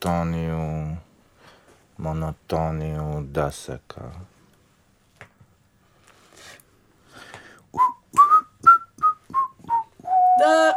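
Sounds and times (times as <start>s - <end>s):
speech: 0.0s - 1.1s, 2.0s - 4.3s, 10.4s - 10.7s
person whistling while working: 7.8s - 10.7s.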